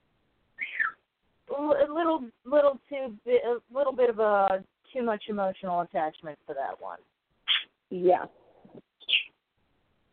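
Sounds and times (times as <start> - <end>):
bird giving a short high-pitched chirp: 0.6 - 1.1, 9.0 - 9.4
speech: 2.2 - 7.2, 7.9 - 8.8.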